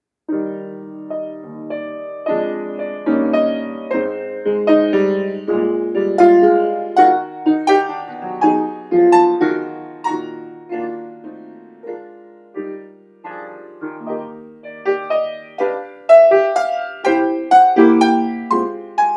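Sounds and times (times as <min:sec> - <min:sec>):
piano improvisation in E flat major: 0:00.3 - 0:19.1.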